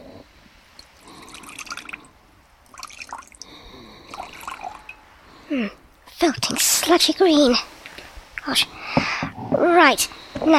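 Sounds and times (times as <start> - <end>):
liquid poured from a bottle into a mixture in a jar: 0.8 - 5.1
speech: 5.6 - 7.7, 8.5 - 10.5.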